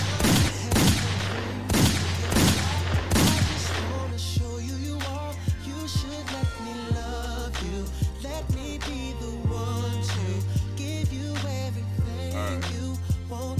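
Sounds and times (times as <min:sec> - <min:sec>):
rapid gunfire sound effects: 0:00.0 - 0:03.9
steady low hum: 0:00.0 - 0:13.5.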